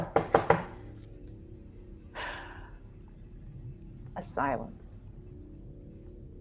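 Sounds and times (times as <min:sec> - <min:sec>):
knocking on a door: 0:00.0 - 0:00.8
low hum: 0:00.0 - 0:06.3
speech: 0:04.2 - 0:04.9.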